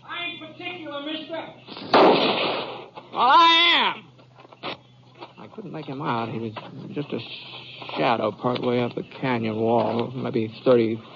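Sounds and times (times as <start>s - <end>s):
single gunshot in a western radio drama: 1.7s - 3.0s
speech: 3.2s - 4.0s, 5.6s - 11.1s.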